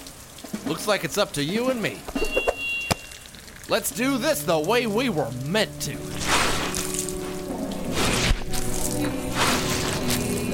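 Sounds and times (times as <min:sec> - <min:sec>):
speech: 0:00.7 - 0:02.5, 0:03.7 - 0:06.4
shovel scooping wet squelching sewage sludge: 0:06.0 - 0:10.5.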